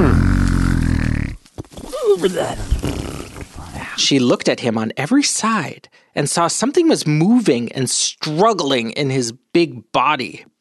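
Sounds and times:
speech: 0:00.0 - 0:00.2, 0:02.2 - 0:03.0, 0:04.0 - 0:10.5
voice imitating a wolf's loud rumbling snoring: 0:00.0 - 0:01.4, 0:02.3 - 0:04.0.

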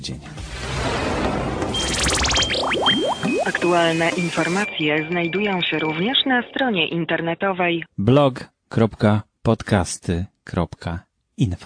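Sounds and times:
speech: 0:00.0 - 0:00.4, 0:03.6 - 0:11.6
quick rising chirps: 0:01.7 - 0:04.4
electronic phone or doorbell ring trilling: 0:01.7 - 0:06.4.

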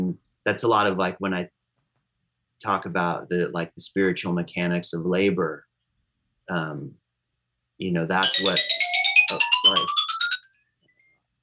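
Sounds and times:
speech: 0:00.1 - 0:01.6, 0:02.6 - 0:05.7, 0:06.5 - 0:07.0, 0:07.8 - 0:10.0
mobile phone ringtone with chirping electronic notes: 0:08.2 - 0:10.6.

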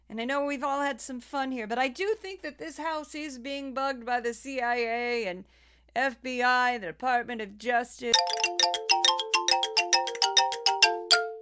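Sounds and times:
speech: 0:00.1 - 0:08.9
doorbell chime melody: 0:08.2 - 0:11.3.

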